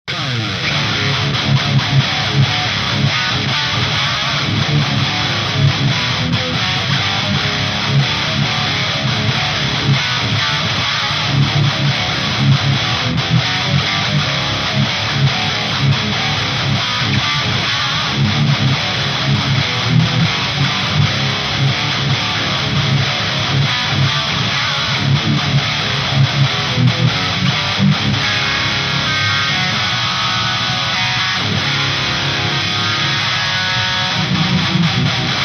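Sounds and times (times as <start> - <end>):
Marshall amplifier at full drive with overdrive boost: 0.0 - 35.4.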